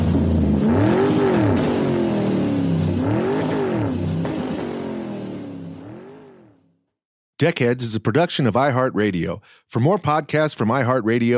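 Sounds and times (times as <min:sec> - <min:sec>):
small car engine revving and driving off: 0:00.0 - 0:06.7
speech: 0:07.4 - 0:11.3.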